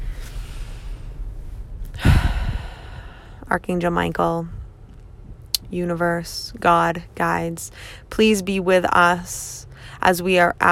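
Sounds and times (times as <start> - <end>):
deep breath taken during a guided prayer: 0.0 - 3.5, 7.7 - 8.1, 9.7 - 10.0
speech: 3.5 - 4.6, 5.7 - 10.7.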